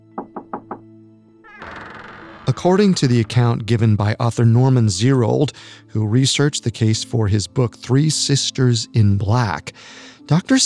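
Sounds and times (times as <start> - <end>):
soft knocking on a wooden door: 0.0 - 0.9
speech: 2.6 - 10.6.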